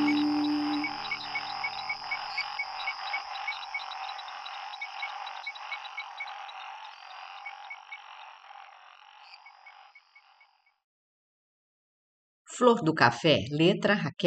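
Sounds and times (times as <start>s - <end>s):
dense chorus of frogs croaking: 0.0s - 10.8s
speech: 12.6s - 14.2s.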